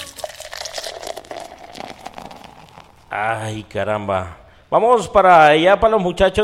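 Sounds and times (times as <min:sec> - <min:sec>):
soda fizzing: 0:00.0 - 0:03.3
soda pouring into a glass: 0:00.0 - 0:03.3
speech: 0:03.1 - 0:06.4.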